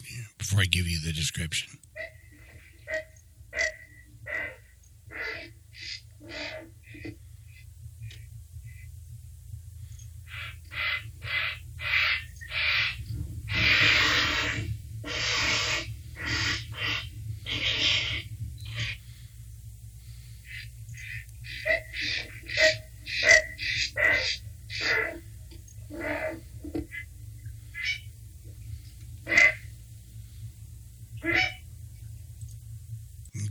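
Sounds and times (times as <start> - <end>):
speech: 0.3 - 2.2
colony of herons calling with harsh croaks and squawks: 2.0 - 9.0, 10.2 - 19.4, 20.0 - 28.3, 29.2 - 29.8, 31.1 - 31.7.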